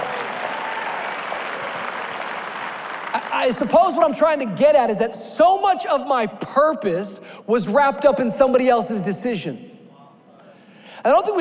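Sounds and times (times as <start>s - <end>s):
crowd clapping: 0.0s - 4.2s
speech: 3.2s - 9.7s, 11.0s - 11.3s.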